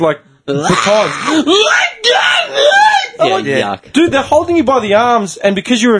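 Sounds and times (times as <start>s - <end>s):
speech: 0.0s - 5.9s
woman screaming: 1.3s - 3.4s.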